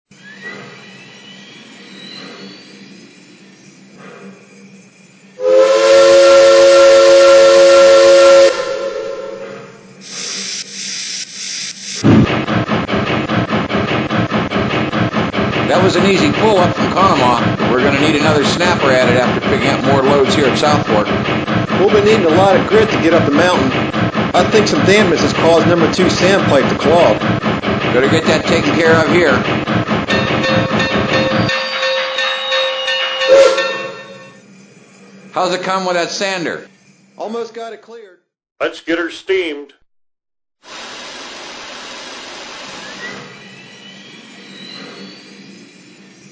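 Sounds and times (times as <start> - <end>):
train: 0.1 - 38.0, 40.6 - 46.2.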